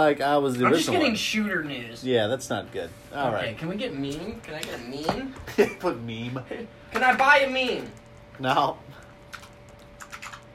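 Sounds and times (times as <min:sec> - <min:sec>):
speech: 0:00.0 - 0:09.0
steady faint hum: 0:00.0 - 0:10.5
loud computer keyboard typing: 0:09.2 - 0:10.5.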